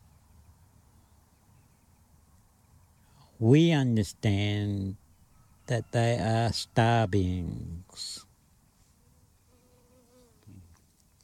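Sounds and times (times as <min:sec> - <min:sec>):
speech: 0:03.4 - 0:05.0, 0:05.7 - 0:08.3
bee buzzing: 0:09.1 - 0:10.6.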